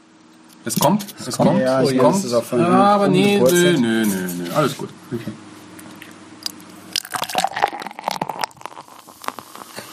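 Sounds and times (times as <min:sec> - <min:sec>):
speech: 0:00.6 - 0:05.5
wet mouth smacking while tasting beer: 0:07.7 - 0:09.9.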